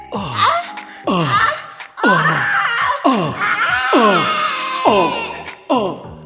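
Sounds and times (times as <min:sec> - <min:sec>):
people screaming together on a count of three: 0:01.2 - 0:06.0.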